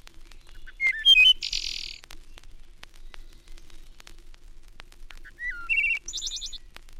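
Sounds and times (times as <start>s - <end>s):
crackly noise: 0.0s - 6.9s
wood thrush song with fluty notes and buzzy trill: 0.1s - 4.0s, 5.2s - 6.7s.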